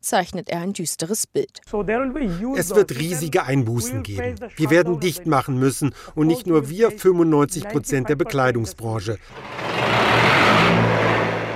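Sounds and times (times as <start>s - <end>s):
speech: 0.0s - 9.7s
diesel generator running in a clothing factory in Bangladesh: 9.2s - 11.5s.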